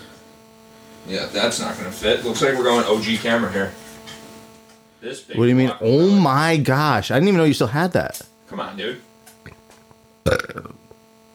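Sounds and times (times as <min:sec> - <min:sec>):
speech: 0:01.0 - 0:03.8, 0:05.0 - 0:09.1
loud rough gravelly burp: 0:10.2 - 0:11.0.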